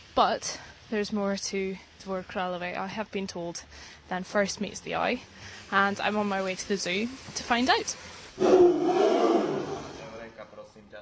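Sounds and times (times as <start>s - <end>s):
speech: 0.2s - 9.2s
Siberian tiger roaring: 8.4s - 10.1s.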